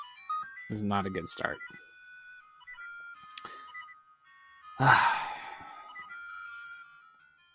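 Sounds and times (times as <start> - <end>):
video game low-health warning beeping: 0.0 - 7.5
speech: 0.7 - 1.9, 4.8 - 5.1.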